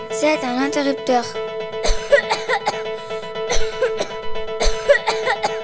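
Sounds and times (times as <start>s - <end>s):
speech: 0.2s - 1.5s
person coughing: 1.8s - 2.8s, 3.5s - 5.6s.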